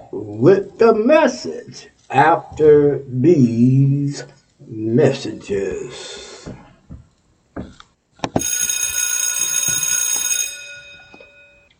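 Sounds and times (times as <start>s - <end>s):
speech: 0.1s - 6.6s
soft knocks: 6.5s - 8.5s
bright loud bell ringing: 8.4s - 11.7s.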